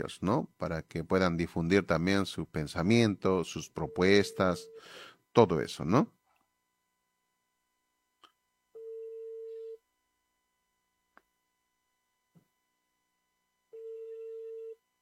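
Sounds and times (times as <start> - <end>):
speech: 0.0 - 6.2
ringing tone of an unanswered telephone call: 3.8 - 4.8, 8.8 - 9.8, 13.7 - 14.8.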